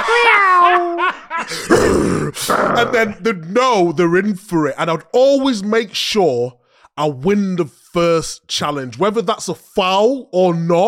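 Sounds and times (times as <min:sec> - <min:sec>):
laughter: 0:00.0 - 0:02.0
former football player imitating a fierce growl: 0:01.5 - 0:03.2
speech: 0:02.8 - 0:10.8.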